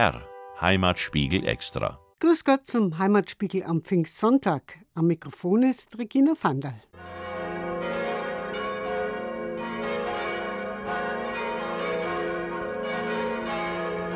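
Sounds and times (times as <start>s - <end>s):
speech: 0.0s - 7.1s
several church bells pealing from a tower: 7.0s - 14.1s.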